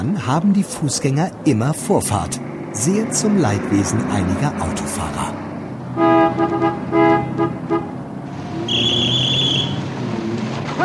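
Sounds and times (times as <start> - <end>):
steady traffic rumble: 0.0 - 10.8
speech: 0.1 - 5.4
car horn honking at pedestrians at an intersection: 5.9 - 9.9.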